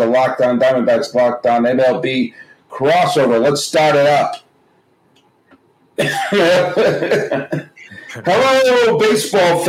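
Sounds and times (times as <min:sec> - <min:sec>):
speech: 0:00.0 - 0:04.4, 0:06.0 - 0:09.6
person coughing harshly in a coughing fit: 0:06.0 - 0:08.3.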